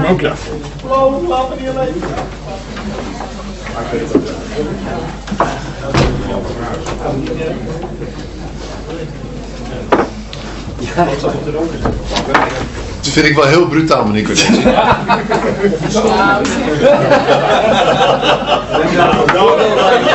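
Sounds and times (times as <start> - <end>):
murmured conversation before a meeting: 0.0 - 20.1
speech: 0.1 - 3.2, 3.8 - 8.3, 10.8 - 20.1
soft knock: 5.4 - 7.1
door shutting with a sharp thud: 5.8 - 8.0, 11.8 - 13.3
laughter: 14.1 - 20.1.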